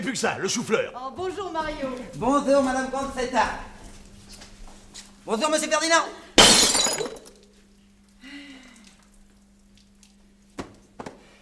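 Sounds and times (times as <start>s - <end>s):
speech: 0.0s - 3.7s, 5.3s - 6.2s
glass clinking: 6.4s - 7.4s
glass bottle shattering: 6.4s - 7.5s.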